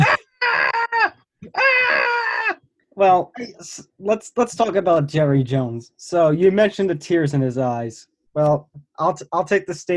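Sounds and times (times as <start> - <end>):
person imitating a primal scream with wordless howls: 0.0 - 2.6
speech: 3.0 - 9.9.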